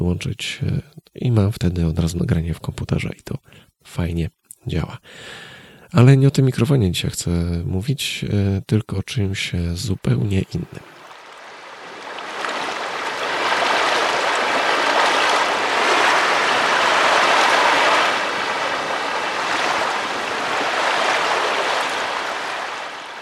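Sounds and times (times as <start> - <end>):
speech: 0.1 - 11.0
ocean waves washing in: 10.8 - 23.2
wind roaring over ocean waves: 11.3 - 23.2.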